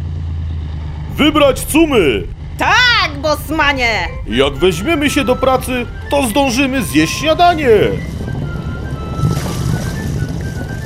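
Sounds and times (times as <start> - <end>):
boat engine rumbling and chugging on water: 0.3 - 10.8
speech: 1.2 - 8.2
water sloshing around the boat hull: 5.4 - 10.8.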